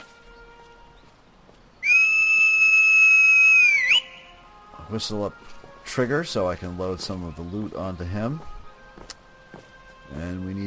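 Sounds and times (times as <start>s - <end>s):
person whistling to call a horse: 1.8s - 4.3s
speech: 4.9s - 8.6s, 10.1s - 10.6s.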